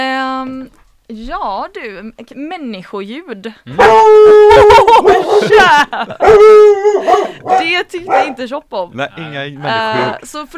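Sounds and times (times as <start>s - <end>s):
speech: 1.1s - 10.5s
laughter: 3.7s - 8.2s
dog yipping and whining barks: 3.8s - 5.5s, 6.2s - 8.4s.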